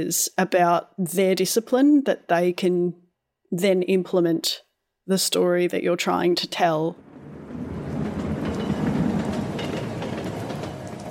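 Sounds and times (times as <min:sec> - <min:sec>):
speech: 0:00.0 - 0:07.0
train passing on railway tracks: 0:07.0 - 0:11.1.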